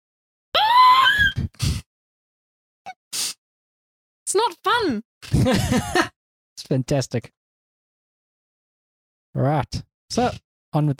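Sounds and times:
person screaming: 0.6s - 1.4s
speech: 4.3s - 7.4s, 9.4s - 10.9s.

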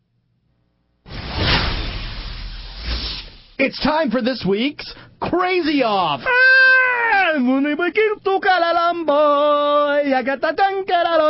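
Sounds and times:
swoosh sound effect: 1.1s - 3.6s
speech: 3.6s - 11.2s.

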